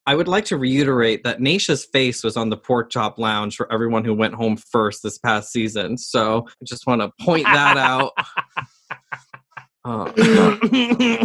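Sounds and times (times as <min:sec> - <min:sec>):
speech: 0:00.0 - 0:08.4, 0:09.8 - 0:11.2
laughter: 0:00.1 - 0:11.2
person coughing in short dry bursts: 0:07.4 - 0:08.6, 0:10.0 - 0:11.2.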